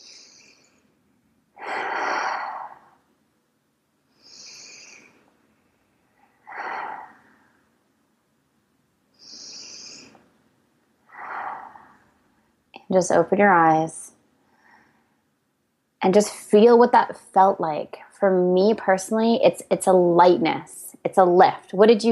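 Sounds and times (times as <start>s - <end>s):
slow deep human breathing: 0.0s - 1.0s, 1.6s - 3.1s, 4.1s - 7.8s, 9.1s - 10.3s, 11.0s - 12.4s, 14.4s - 15.3s
speech: 12.9s - 14.0s, 16.0s - 22.0s.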